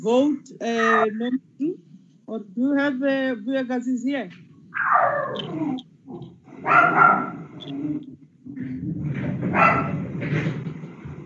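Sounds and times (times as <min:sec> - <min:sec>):
speech: 0:00.0 - 0:10.7
dogs barking and yelping: 0:04.8 - 0:07.7, 0:09.4 - 0:10.0.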